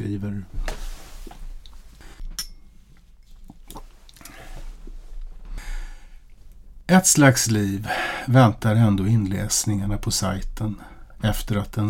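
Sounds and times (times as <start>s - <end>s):
speech: 0.0s - 0.7s, 6.9s - 11.8s
glass of rum clinking: 2.2s - 2.8s
person sipping rum: 2.9s - 4.9s
quiet exhale: 4.2s - 6.3s.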